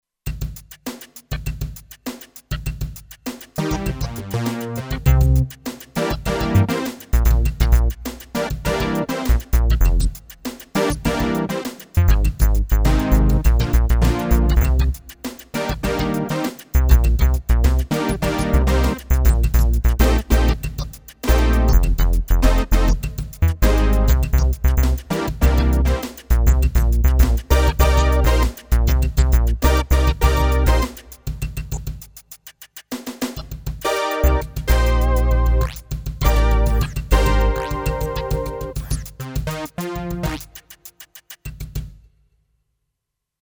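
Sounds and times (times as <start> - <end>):
Kurzweil K2500X synthesizer jam in C2: 3.6 - 10.2, 10.8 - 15.0, 15.6 - 31.1, 33.8 - 40.5.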